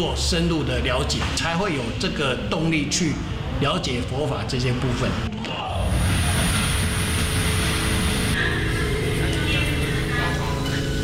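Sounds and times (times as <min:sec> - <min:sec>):
speech: 0:00.0 - 0:06.1
train running on rails from Xizhi to Songshan: 0:05.8 - 0:10.6.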